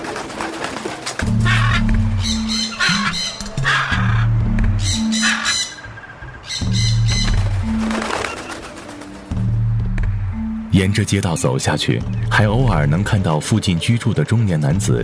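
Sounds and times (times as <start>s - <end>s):
parrot wings fluttering: 0.0s - 4.3s, 6.4s - 9.5s
parrot calling with hoots and squawks: 1.4s - 8.2s
speech: 10.8s - 15.0s.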